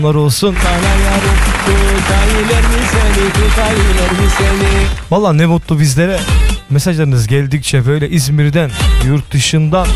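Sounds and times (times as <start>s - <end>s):
speech: 0.0s - 9.9s
dense steady applause sound effect: 0.5s - 5.1s.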